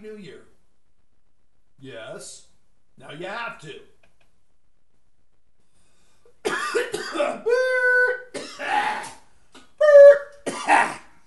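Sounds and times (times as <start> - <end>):
speech: 0.0 - 0.6, 1.8 - 3.9
harsh coughing: 6.4 - 7.5, 8.3 - 9.3, 10.4 - 11.2.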